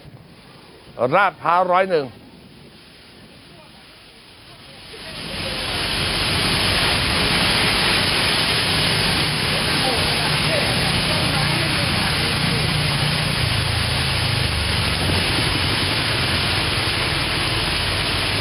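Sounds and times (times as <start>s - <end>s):
speech: 1.0s - 2.2s
gusts of strong wind at Lat Phrao 101: 2.1s - 18.4s
heavy rain downpour at Lat Phrao 101: 2.7s - 18.4s.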